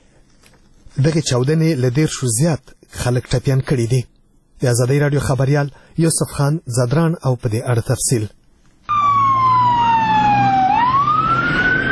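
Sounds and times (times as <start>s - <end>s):
speech: 1.0s - 8.4s
emergency vehicle siren wailing in Kabul: 8.9s - 11.9s.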